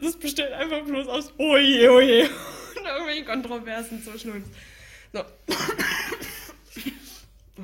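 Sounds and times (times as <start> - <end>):
speech: 0.0 - 6.2
person coughing: 5.5 - 7.2.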